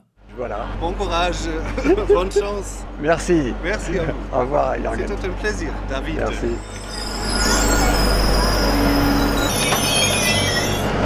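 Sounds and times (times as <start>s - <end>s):
low rumble of rolling railcars: 0.2s - 1.8s, 2.5s - 11.0s
speech: 0.4s - 6.8s
laughter: 1.5s - 2.8s, 3.7s - 4.5s
high-pitched metallic squealing of train wheels on rails at Saint-Charles railway station in Marseille France: 6.6s - 11.0s.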